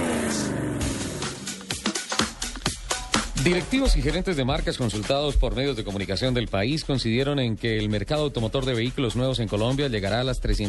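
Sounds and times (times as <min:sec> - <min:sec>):
car engine roaring and revving up: 0:00.0 - 0:02.1
speech: 0:03.4 - 0:10.6.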